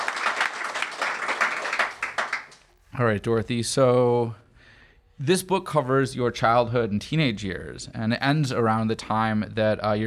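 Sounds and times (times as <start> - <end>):
crowd applauding: 0.0 - 2.7
speech: 3.0 - 4.4, 5.2 - 10.0.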